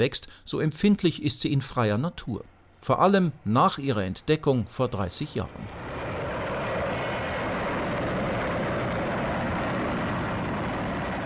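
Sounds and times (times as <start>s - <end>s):
speech: 0.0s - 5.9s
helicopter flying with engine roar and rotor noise: 4.1s - 11.2s.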